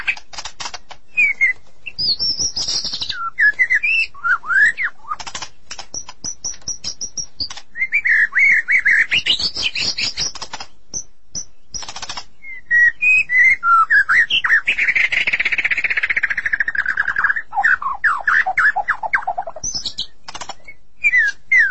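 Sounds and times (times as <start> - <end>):
sharp clicking ticks: 0.0 - 1.0, 5.2 - 7.7, 9.2 - 12.3, 19.6 - 20.8
magpie-robins and shamas singing: 0.0 - 21.6.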